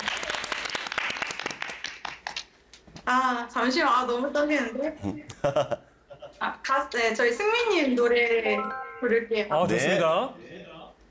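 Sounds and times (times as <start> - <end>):
studio audience applause and cheering during a singing judging round: 0.0 - 2.3
speech: 3.1 - 5.8, 6.4 - 10.4.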